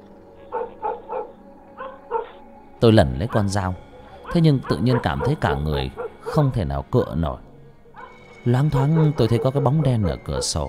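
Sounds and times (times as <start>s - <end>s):
dog barking fiercely at night in an empty house: 0.4s - 2.4s, 4.2s - 6.5s, 8.0s - 10.2s
speech: 2.8s - 7.5s, 8.4s - 10.6s.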